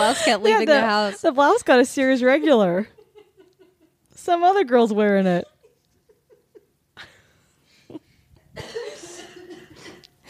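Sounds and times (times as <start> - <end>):
speech: 0.0 - 3.0, 4.2 - 5.5
harsh coughs: 8.6 - 10.2.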